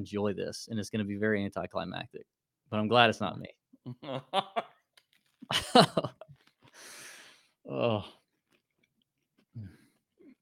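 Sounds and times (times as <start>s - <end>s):
speech: 0.0s - 4.7s, 5.5s - 6.2s, 7.7s - 8.2s
laughter: 5.5s - 6.2s
crunchy chewing of a cracker: 8.3s - 10.4s.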